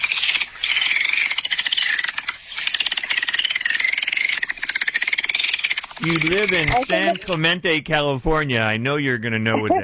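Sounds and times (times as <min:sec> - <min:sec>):
dolphin buzzing click trains: 0:00.0 - 0:07.6
speech: 0:06.0 - 0:09.8.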